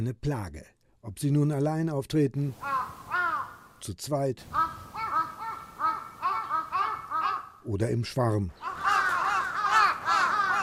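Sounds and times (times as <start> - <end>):
speech: 0.0 - 3.0, 3.8 - 5.0, 7.6 - 8.7
crows cawing: 2.6 - 3.8, 4.5 - 7.7, 8.6 - 10.6.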